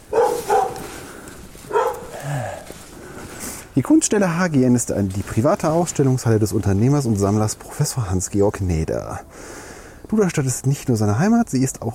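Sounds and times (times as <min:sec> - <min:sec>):
dog barking in Duderstadt: 0:00.0 - 0:01.0, 0:01.7 - 0:02.3
faint noise: 0:00.0 - 0:11.9
speech: 0:03.8 - 0:11.9.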